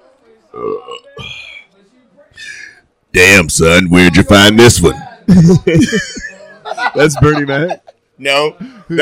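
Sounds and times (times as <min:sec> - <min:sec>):
loud deep croaky burp: 0:00.5 - 0:01.4
speech: 0:03.1 - 0:06.3, 0:06.9 - 0:09.0
laughter: 0:05.3 - 0:08.1.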